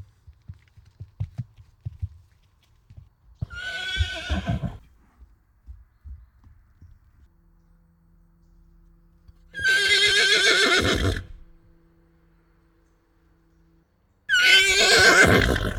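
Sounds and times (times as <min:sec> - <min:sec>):
horse hooves clopping: 0:00.0 - 0:07.7
horse giving a quavering whinny: 0:03.4 - 0:04.8, 0:09.6 - 0:11.3, 0:14.3 - 0:15.7.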